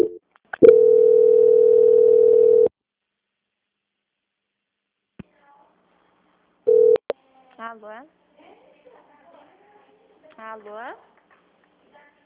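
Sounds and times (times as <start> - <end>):
steady low telephone tone during call transfer: 0.0 - 2.7, 6.7 - 7.0
speech: 7.8 - 8.2, 10.4 - 11.1.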